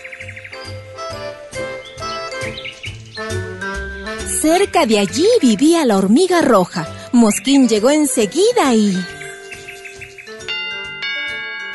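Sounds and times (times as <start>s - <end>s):
light rhythmic music: 0.0s - 11.7s
speech: 4.4s - 9.2s
doorbell ding-dong chime: 10.3s - 11.7s.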